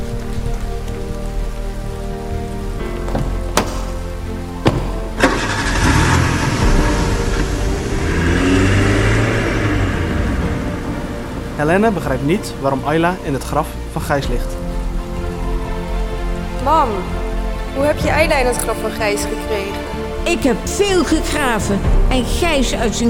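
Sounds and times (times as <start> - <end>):
rain-like hiss: 0.0 - 23.0
sharp thuds: 3.1 - 4.0, 4.6 - 5.4
car engine idling and pulling away: 3.2 - 13.3
speech: 11.7 - 14.6, 16.6 - 23.0.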